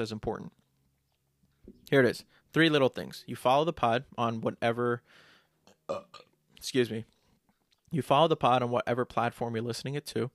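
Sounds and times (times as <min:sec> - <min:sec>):
speech: 0:00.0 - 0:00.6, 0:01.9 - 0:05.3, 0:05.9 - 0:07.2, 0:07.9 - 0:10.3
loud gurgling burp: 0:05.9 - 0:06.3.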